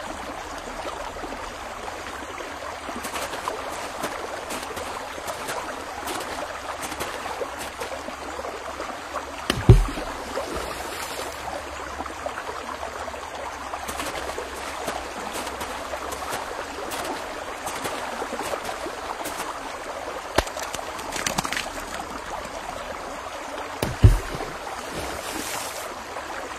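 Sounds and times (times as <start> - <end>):
river water flowing along a riverbank: 0.0 - 26.5
knocks and sharper thumps: 9.5 - 10.3, 23.8 - 25.2.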